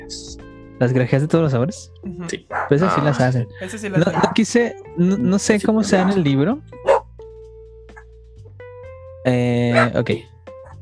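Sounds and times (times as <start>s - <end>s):
speech: 0.1s - 6.9s, 9.2s - 10.3s
single sharp dog bark: 2.5s - 3.1s, 4.0s - 4.4s, 5.9s - 6.2s, 6.8s - 7.1s, 9.7s - 10.0s.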